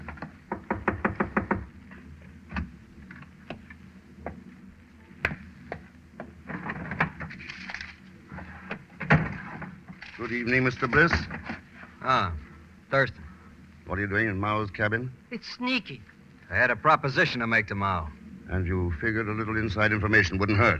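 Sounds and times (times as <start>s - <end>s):
firm knocks on a wooden cabin door: 0.0s - 1.7s
speech: 10.3s - 13.2s, 13.9s - 20.7s.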